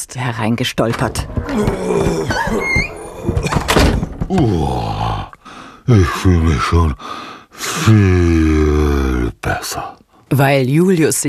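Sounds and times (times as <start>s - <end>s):
speech: 0.0s - 3.6s, 4.3s - 5.1s, 5.9s - 11.2s
door creaking open with squeaky hinge whine: 0.8s - 4.3s
low thumps and rattles: 0.8s - 4.7s.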